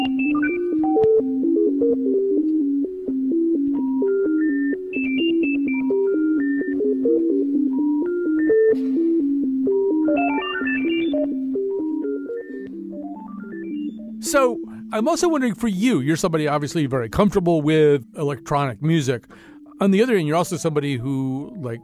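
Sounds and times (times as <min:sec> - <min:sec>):
many cell phone ringtones playing at once: 0:00.0 - 0:15.0
speech: 0:15.0 - 0:21.8.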